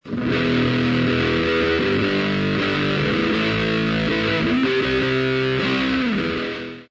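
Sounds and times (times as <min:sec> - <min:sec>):
rhythm: 0:00.0 - 0:06.9.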